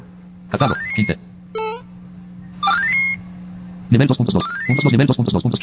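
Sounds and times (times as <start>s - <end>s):
speech: 0.5s - 1.2s, 3.9s - 5.6s
steady tonal video game background: 0.5s - 1.9s, 2.6s - 5.6s.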